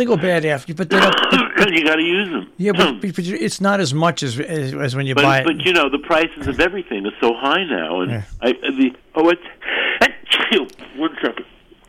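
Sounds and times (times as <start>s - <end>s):
speech: 0.0s - 9.8s, 10.5s - 11.5s
person sneezing: 0.9s - 1.6s.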